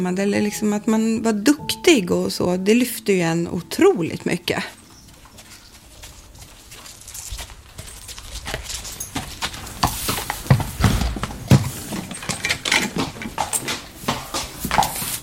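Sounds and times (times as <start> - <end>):
speech: 0.0 - 4.8
horse hooves clip-clopping on a hard surface: 3.7 - 15.2.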